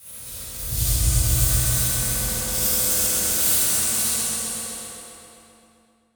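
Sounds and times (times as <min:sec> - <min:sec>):
dark metallic transition stab: 0:00.2 - 0:03.7.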